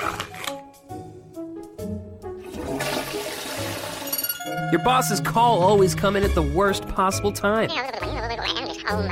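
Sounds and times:
toilet flushing with rushing gurgling water: 2.4s - 4.2s
speech: 4.7s - 8.1s, 8.9s - 9.1s.

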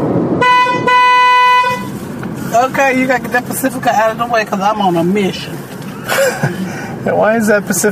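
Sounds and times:
road rumble inside a moving car in traffic: 0.0s - 7.9s
loud sustained car horn blast: 0.4s - 2.0s
speech: 2.6s - 7.9s.

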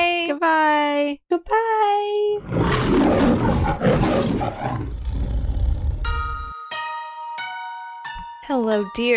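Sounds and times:
speech: 0.4s - 1.7s, 8.5s - 9.1s
lion roaring: 2.4s - 6.2s.

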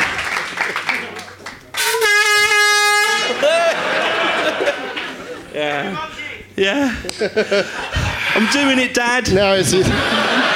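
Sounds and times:
air horn blast marking a quiz game winner: 1.8s - 3.6s
laughter: 3.1s - 6.1s, 6.7s - 10.5s
speech: 5.6s - 10.2s.

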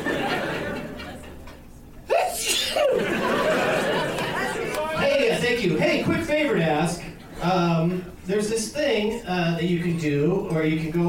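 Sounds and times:
people laughing: 0.0s - 6.2s
loud sneeze from an allergy attack: 2.1s - 3.0s
speech: 5.9s - 11.0s.

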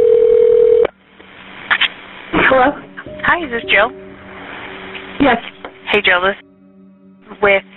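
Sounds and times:
ringback tone over a phone line: 0.0s - 0.9s
speech: 2.5s - 4.0s, 5.2s - 5.4s, 6.0s - 6.5s, 7.3s - 7.7s.

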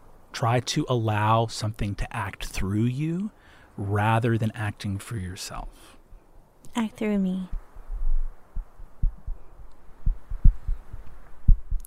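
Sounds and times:
faint hiss: 0.0s - 11.8s
speech: 0.4s - 6.0s, 6.8s - 7.6s
low heartbeat in paired beats: 7.8s - 11.8s.

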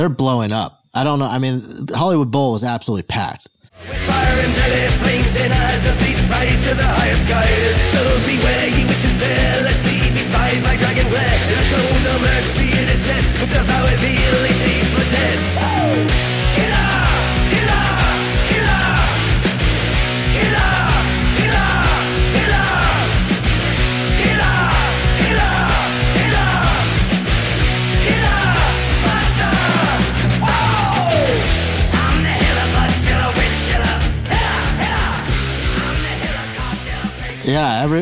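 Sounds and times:
speech: 0.0s - 16.3s, 37.5s - 38.0s
packed concert crowd shouting a song chorus: 3.8s - 4.9s, 16.6s - 19.3s, 20.3s - 23.2s, 24.2s - 27.0s, 28.0s - 31.4s, 32.0s - 35.3s
loud live rock music: 3.8s - 38.0s.

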